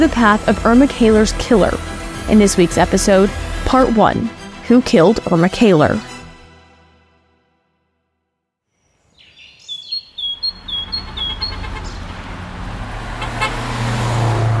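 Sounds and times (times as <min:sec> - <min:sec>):
city street traffic on Vine Street in Lancaster City: 0:00.0 - 0:03.8, 0:09.8 - 0:14.5
speech: 0:00.0 - 0:06.1
birds chirping faintly: 0:08.7 - 0:12.2.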